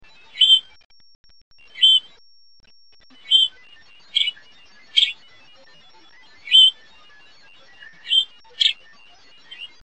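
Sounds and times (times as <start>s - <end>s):
juvenile bird calls and songs: 0.2s - 0.7s, 1.7s - 2.1s, 3.2s - 5.2s, 6.4s - 6.8s, 7.7s - 9.8s.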